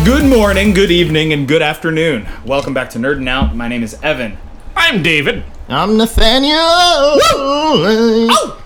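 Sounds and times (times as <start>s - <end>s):
speech: 0.1s - 8.6s
person yelping like a small dog: 6.3s - 8.6s.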